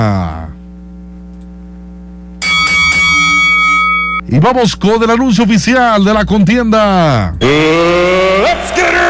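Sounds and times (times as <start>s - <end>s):
speech: 0.0s - 0.4s, 4.3s - 9.0s
bell ringing to start a duel: 2.4s - 4.2s.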